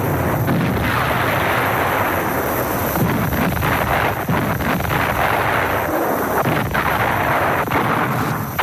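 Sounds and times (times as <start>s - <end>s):
German artillery cannon fire of all calibres: 0.0s - 8.6s
explosions: 0.0s - 8.6s.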